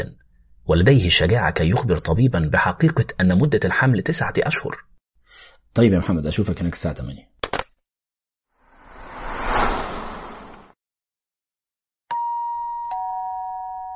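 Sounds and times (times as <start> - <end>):
speech: 0.0 - 4.9, 5.7 - 7.4
doorbell chime: 12.1 - 13.9.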